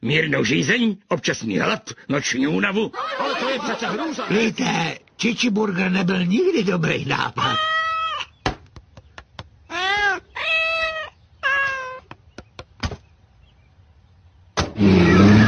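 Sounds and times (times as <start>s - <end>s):
speech: 0.0s - 7.8s
laughter: 2.8s - 4.8s
cat meowing: 7.4s - 8.3s, 9.7s - 12.1s, 14.8s - 15.4s
sharp clicks and knocks: 8.4s - 10.1s, 12.0s - 13.0s
loud rushing engine-like noise: 14.8s - 15.4s.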